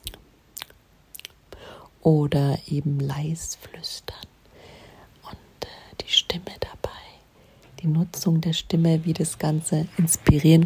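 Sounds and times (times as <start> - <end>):
soft wet ASMR mouth smacks of lip and tongue: 0.0 - 1.4
faint breathy hiss: 1.4 - 2.1, 3.5 - 10.6
speech: 2.0 - 4.2, 6.1 - 6.8, 7.8 - 10.6.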